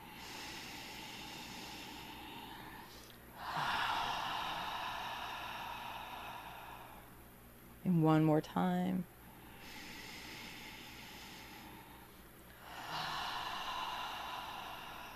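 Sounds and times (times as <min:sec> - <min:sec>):
slow deep inhale: 0:00.0 - 0:07.4, 0:09.2 - 0:15.1
speech: 0:07.9 - 0:09.1.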